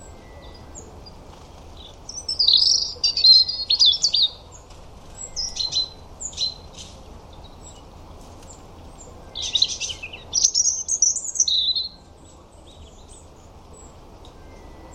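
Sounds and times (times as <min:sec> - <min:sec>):
European robin song: 0:00.0 - 0:14.9
steady low background hiss: 0:00.0 - 0:14.9.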